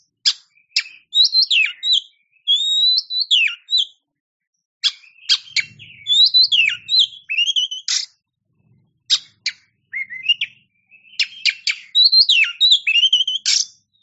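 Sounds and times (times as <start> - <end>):
Oriental magpie-robin song: 0.0 - 14.0.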